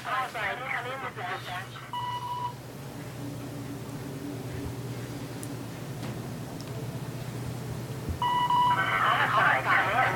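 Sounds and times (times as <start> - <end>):
steady low engine-like hum: 0.0 - 10.1
walkie-talkie ringing like a phone: 8.2 - 10.1.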